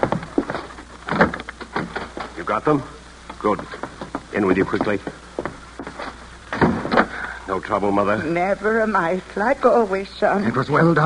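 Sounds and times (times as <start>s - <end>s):
door creaking open: 0.0s - 2.4s, 6.5s - 7.2s
speech: 2.5s - 5.2s, 7.5s - 11.0s.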